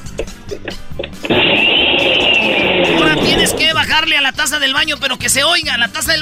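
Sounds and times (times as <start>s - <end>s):
brief knocks and clicks: 0.0s - 3.8s
speech: 0.2s - 1.7s, 3.4s - 6.2s
kitchen blender running with a whirring roar: 1.2s - 3.9s.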